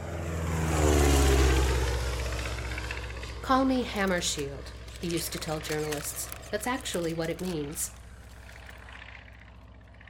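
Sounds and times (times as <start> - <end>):
propeller airplane engine droning: 0.0 - 10.0
speech: 3.5 - 8.0.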